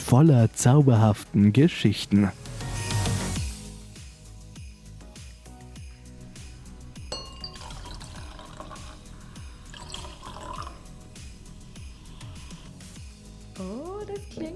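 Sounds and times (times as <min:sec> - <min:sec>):
speech: 0:00.1 - 0:02.5
glasses clinking in a toast: 0:07.0 - 0:11.0.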